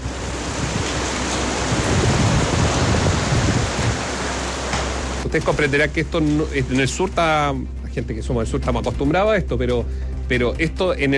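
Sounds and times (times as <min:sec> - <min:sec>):
heavy rain pouring down: 0:00.0 - 0:07.2
speech: 0:05.3 - 0:11.1.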